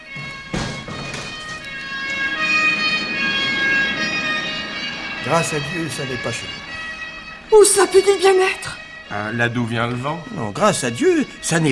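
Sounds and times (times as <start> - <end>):
dull thuds: 0.0 - 2.4
sirens wailing during a fire: 0.0 - 11.7
speech: 5.3 - 6.7, 7.5 - 11.7.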